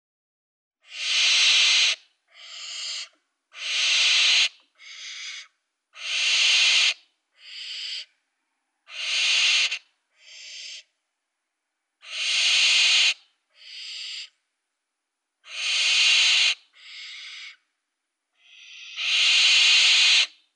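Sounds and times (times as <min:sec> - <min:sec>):
barn owl hissing: 0:00.8 - 0:08.1, 0:08.9 - 0:10.9, 0:12.0 - 0:14.4, 0:15.4 - 0:17.7, 0:18.4 - 0:20.5.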